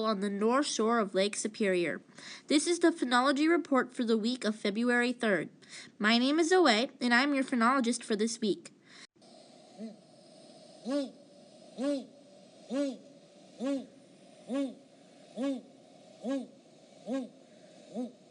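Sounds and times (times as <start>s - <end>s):
speech: 0.0s - 8.8s, 10.8s - 11.2s, 11.8s - 12.1s, 12.7s - 13.9s, 14.5s - 14.8s, 15.4s - 18.2s
great gray owl hooting on the north shore of Lake Superior in February: 9.2s - 18.2s.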